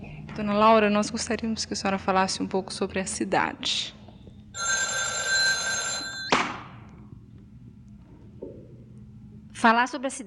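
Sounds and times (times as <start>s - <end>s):
speech: 0.4s - 4.0s, 9.6s - 10.2s
old telephone bell ringing with metallic jangle: 4.6s - 6.7s.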